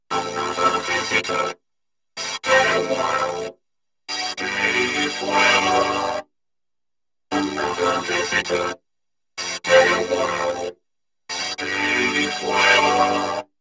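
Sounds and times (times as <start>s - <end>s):
Access Virus synthesizer: 0.1s - 1.5s, 2.2s - 3.5s, 4.1s - 6.2s, 7.3s - 8.8s, 9.4s - 10.7s, 11.3s - 13.5s
vocoder voice: 0.1s - 1.6s, 2.2s - 3.5s, 4.1s - 6.2s, 7.3s - 8.8s, 9.4s - 10.7s, 11.3s - 13.4s.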